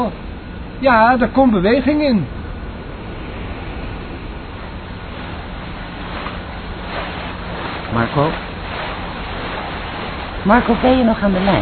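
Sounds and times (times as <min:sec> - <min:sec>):
speech: 0:00.0 - 0:00.2, 0:00.8 - 0:02.4, 0:07.9 - 0:08.5, 0:10.4 - 0:11.6
tugboat engine roaring at full power pulling a stuck ferry: 0:00.0 - 0:11.6
rushing water churned by a tugboat: 0:03.4 - 0:11.6.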